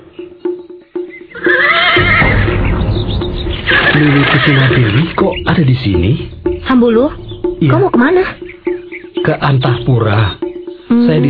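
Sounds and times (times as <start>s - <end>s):
horse hooves clip-clopping: 0.0s - 11.2s
horse letting out a loud drawn-out whinny: 1.3s - 2.5s
speech: 4.0s - 8.4s, 9.2s - 10.4s, 11.1s - 11.2s.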